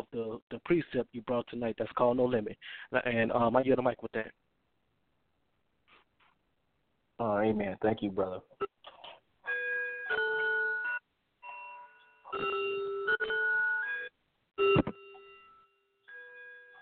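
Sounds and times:
speech: 0:00.4 - 0:04.4, 0:07.2 - 0:08.7, 0:12.3 - 0:12.6
clock bell chiming ten o'clock: 0:09.5 - 0:16.8.

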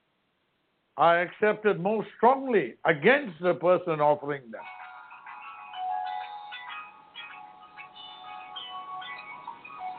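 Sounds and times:
speech: 0:01.0 - 0:04.8
phone ringtone playing a repeating melodic electronic tune: 0:04.6 - 0:09.9.

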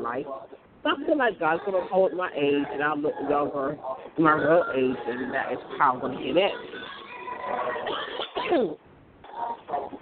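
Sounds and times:
speech: 0:00.1 - 0:06.8, 0:07.5 - 0:08.8
rough raspy cough caused by poor air: 0:07.6 - 0:08.8.

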